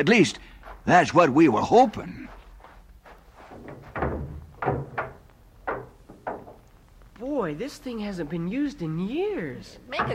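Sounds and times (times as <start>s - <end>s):
speech: 0.0s - 2.4s, 7.4s - 10.1s
dull thuds and knocks: 3.5s - 6.7s
wooden door of an ice house creaking and bumping shut: 3.5s - 7.1s.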